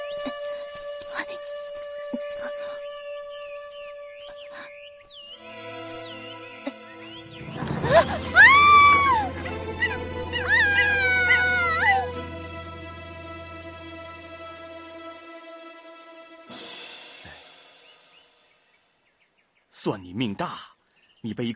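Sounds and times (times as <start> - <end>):
speech: 0.2 - 0.4, 20.2 - 21.5
monkeys screeching frantically: 7.8 - 12.1.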